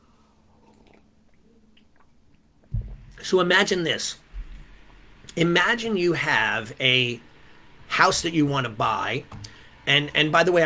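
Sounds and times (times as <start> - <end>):
steady low hiss of room noise: 0.0 - 10.6
person sipping coffee: 0.4 - 2.5
swallowing: 0.5 - 2.2
wet mouth clicks: 0.6 - 2.4
speech: 3.3 - 4.2, 5.4 - 7.3, 7.9 - 10.6.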